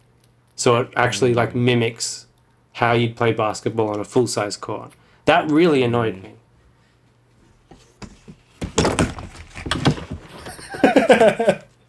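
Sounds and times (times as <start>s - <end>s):
speech: 0.6s - 6.4s, 11.2s - 11.7s
heavy thumps of a person falling out of a chair: 7.6s - 10.7s
furniture clattering: 7.7s - 11.2s
laughter: 10.3s - 11.7s.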